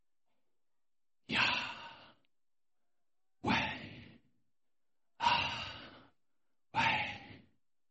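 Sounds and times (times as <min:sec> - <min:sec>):
slow deliberate breathing in and out: 0:01.4 - 0:02.3, 0:03.5 - 0:04.3, 0:05.2 - 0:06.2.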